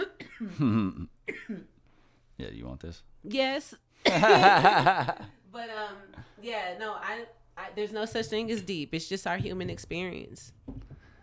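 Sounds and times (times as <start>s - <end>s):
person coughing after smoking weed: 0.0s - 1.7s
speech: 0.4s - 1.7s, 2.4s - 10.8s
laughter: 4.1s - 5.3s.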